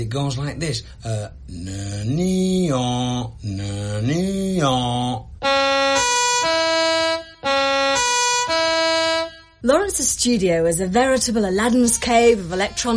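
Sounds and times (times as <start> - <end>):
speech: 0.0 - 6.1, 9.6 - 12.9
emergency siren wailing: 5.4 - 9.6.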